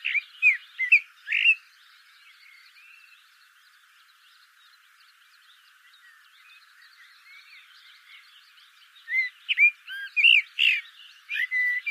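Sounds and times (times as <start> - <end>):
Eurasian blackbird singing: 0.0 - 11.9.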